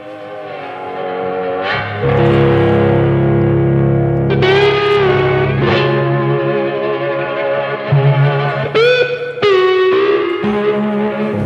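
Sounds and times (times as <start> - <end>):
distorted bluesy cigar box guitar with sliding notes and strummed chords: 0.0 - 11.4.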